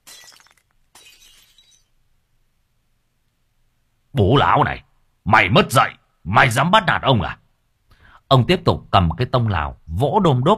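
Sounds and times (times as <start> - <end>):
bowl smashing against someone's back and shattering: 0.0 - 1.9
speech: 4.2 - 7.4, 8.3 - 10.5.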